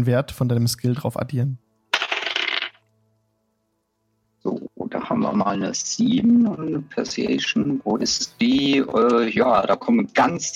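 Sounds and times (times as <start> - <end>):
speech: 0.0 - 1.6, 4.4 - 10.5
dice rolled for a tabletop role-playing game: 1.9 - 2.9.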